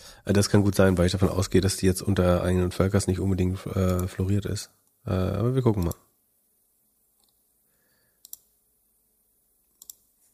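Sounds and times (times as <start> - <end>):
faint hiss: 0.0 - 10.3
speech: 0.2 - 6.0
computer mouse double clicking: 5.8 - 6.0, 7.2 - 7.4, 8.2 - 8.5, 9.7 - 10.1.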